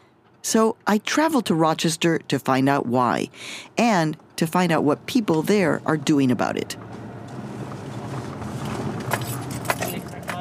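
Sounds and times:
speech: 0.4s - 7.0s
low rumble of a car's interior in Rochester: 4.8s - 10.3s.

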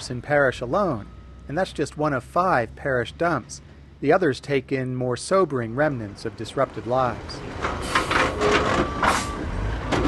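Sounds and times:
speech: 0.0s - 8.7s
long red dump truck reversing toward the edge of a landfill pit: 0.0s - 10.0s
dump truck backup beeps: 8.4s - 9.7s.

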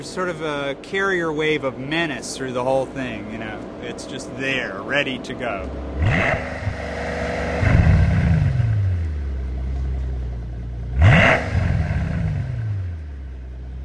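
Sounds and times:
speech: 0.0s - 6.7s
deep rumbling car exhaust burble at idle: 5.3s - 13.8s
car engine revving: 5.6s - 13.8s.

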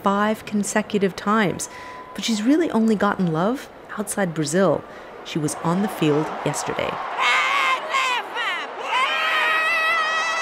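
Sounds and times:
speech: 0.0s - 7.5s
faint crowd noise: 4.0s - 10.4s
woman shouting a player's name in a stadium: 6.7s - 10.4s.

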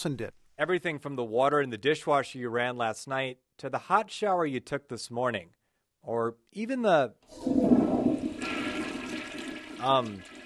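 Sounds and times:
speech: 0.0s - 8.0s, 9.8s - 10.4s
toilet flushing: 7.3s - 10.4s.

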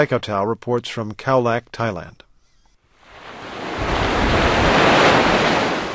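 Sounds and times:
speech: 0.0s - 2.2s
surf washing in on a beach: 3.0s - 5.9s
wind rushing across a microphone on a beach: 3.1s - 5.9s.

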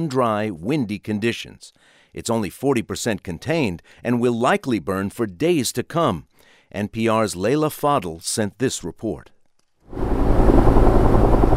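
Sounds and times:
speech: 0.0s - 10.2s
helicopters flying over canyons and mountain ridges during a wildfire: 9.9s - 11.5s.

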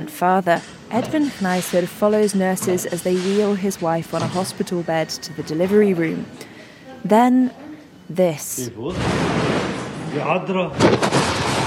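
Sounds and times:
speech: 0.1s - 9.4s, 10.1s - 11.2s
loud explosion shattering a hospital room: 8.9s - 10.2s, 10.8s - 11.6s.

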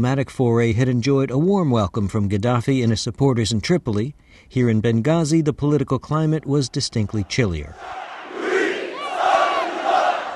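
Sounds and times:
speech: 0.0s - 8.1s
large crowd shouting at a protest in Benghazi: 6.7s - 10.3s.

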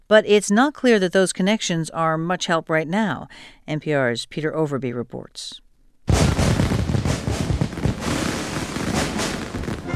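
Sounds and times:
speech: 0.1s - 5.6s
rapid barrage of fireworks bursting: 6.1s - 9.9s.

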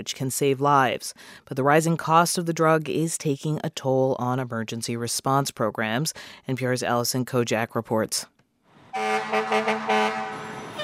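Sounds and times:
speech: 0.0s - 8.3s
fire trucks backing into a fire station giving a harmonic horn-like tone: 8.9s - 10.8s.

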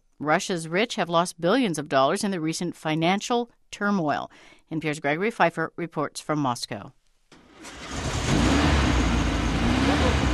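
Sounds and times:
speech: 0.2s - 7.0s
old Porsche engine starting and revving: 7.4s - 10.3s.

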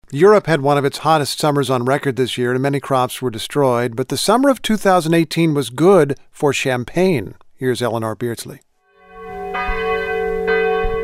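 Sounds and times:
speech: 0.1s - 8.7s
church bells tolling at an abbey in the Champagne region of France: 9.0s - 11.0s.

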